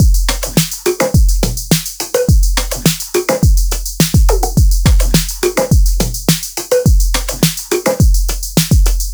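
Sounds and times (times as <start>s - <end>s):
experimental drum machine loop: 0.0s - 9.1s.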